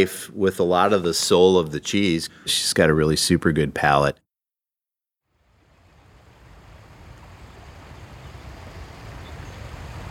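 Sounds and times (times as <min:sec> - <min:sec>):
speech: 0:00.0 - 0:04.2
Sheboygan River water flowing with deep rumbling low end: 0:05.4 - 0:10.0.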